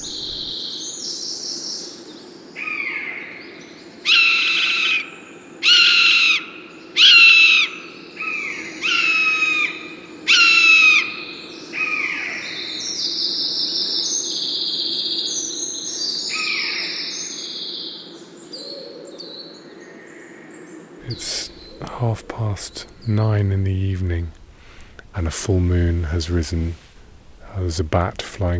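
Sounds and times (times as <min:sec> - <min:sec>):
owl calling: 0:00.0 - 0:23.0
steady low outdoor hum: 0:00.0 - 0:28.5
speech: 0:22.7 - 0:24.4, 0:25.3 - 0:26.8, 0:27.6 - 0:28.5.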